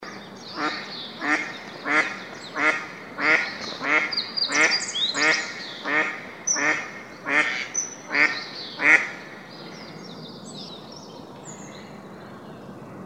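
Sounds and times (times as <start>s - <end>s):
duck quacking: 0.5s - 9.2s.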